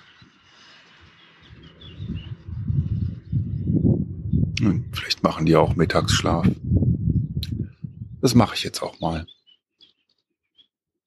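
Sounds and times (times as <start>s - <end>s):
faint bird chirps: 0.0s - 5.6s, 7.5s - 10.7s
steady low rumble: 2.0s - 8.5s
speech: 4.6s - 7.0s, 8.2s - 9.4s.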